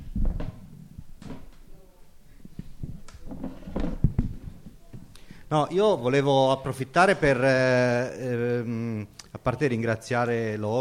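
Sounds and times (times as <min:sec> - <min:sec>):
chair being shifted around: 0:00.0 - 0:01.5, 0:02.6 - 0:05.1
speech: 0:05.5 - 0:10.7.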